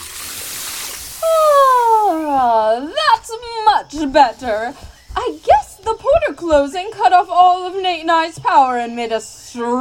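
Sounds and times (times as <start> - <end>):
water pouring into a bottle: 0.0 - 2.1
speech: 3.3 - 9.7.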